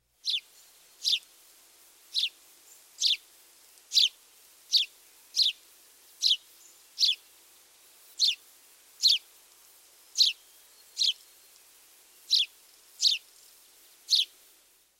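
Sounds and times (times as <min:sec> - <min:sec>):
house sparrow chirping: 0:00.2 - 0:01.2, 0:02.1 - 0:02.3, 0:03.0 - 0:03.2, 0:03.9 - 0:04.1, 0:04.7 - 0:05.6, 0:06.2 - 0:06.4, 0:07.0 - 0:07.2, 0:08.2 - 0:08.4, 0:09.0 - 0:09.2, 0:10.1 - 0:11.2, 0:12.2 - 0:13.2, 0:14.1 - 0:14.3.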